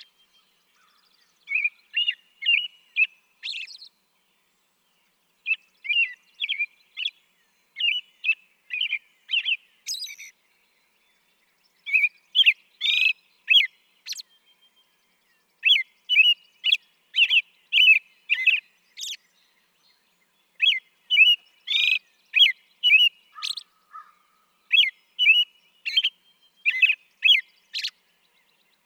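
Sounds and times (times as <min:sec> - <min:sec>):
American robin singing: 0:00.0 - 0:28.8.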